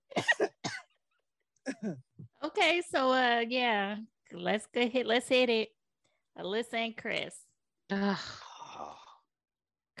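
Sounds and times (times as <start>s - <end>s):
person coughing: 0.1s - 0.9s, 1.7s - 2.0s
speech: 1.8s - 5.8s, 6.4s - 8.9s.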